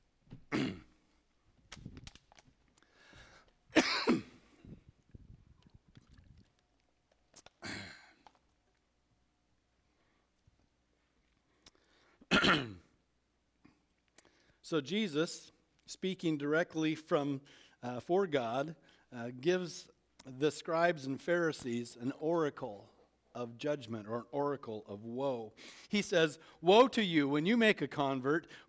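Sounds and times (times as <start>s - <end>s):
person with a cough coughing harshly: 0.5s - 0.9s, 3.8s - 4.4s, 7.6s - 8.2s, 12.3s - 12.8s
person clearing throat: 0.5s - 1.0s, 3.8s - 4.6s, 7.6s - 8.4s, 12.3s - 12.9s
speech: 14.7s - 28.6s.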